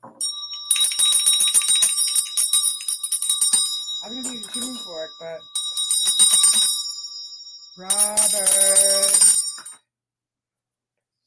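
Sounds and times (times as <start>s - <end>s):
small bell struck and ringing with a bright high tone: 0.0s - 9.8s
speech: 4.1s - 6.7s, 7.8s - 9.4s.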